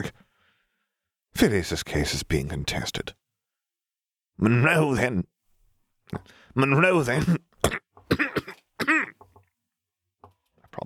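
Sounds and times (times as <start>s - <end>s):
speech: 1.4s - 3.2s, 4.4s - 5.3s, 6.1s - 7.5s
person in a harsh hacking coughing fit: 7.1s - 9.2s.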